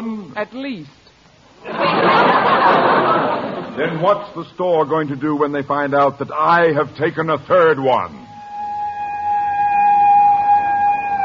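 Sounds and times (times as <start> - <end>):
speech: 0.4 - 1.0, 1.6 - 8.3
laughter: 1.6 - 4.2
police car siren: 8.3 - 11.2.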